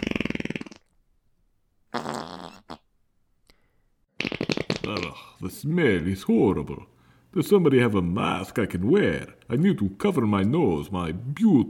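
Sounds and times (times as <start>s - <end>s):
loud buzzy fart noises: 0.0s - 0.9s, 1.9s - 2.9s, 4.1s - 5.3s
speech: 4.9s - 11.6s.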